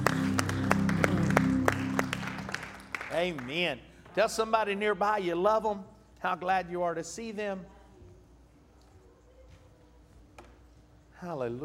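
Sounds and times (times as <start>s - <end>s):
droning musical backing: 0.0s - 3.5s
church audience clapping in unison in praise: 0.0s - 4.3s
speech: 3.2s - 7.8s, 11.2s - 11.6s.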